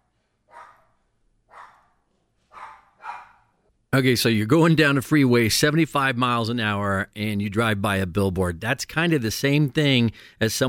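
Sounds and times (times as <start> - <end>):
dogs barking: 0.5 - 3.6
speech: 3.9 - 10.6.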